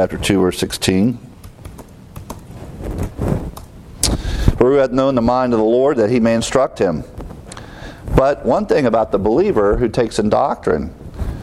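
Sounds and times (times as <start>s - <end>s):
speech: 0.0s - 1.3s, 4.6s - 7.1s, 8.2s - 11.0s
typing on a computer keyboard: 1.4s - 3.7s.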